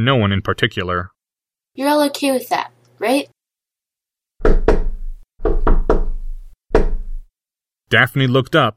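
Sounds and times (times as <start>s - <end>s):
speech: 0.0s - 1.1s, 1.8s - 3.4s, 7.9s - 8.7s
knocking on a wooden door: 4.4s - 7.3s.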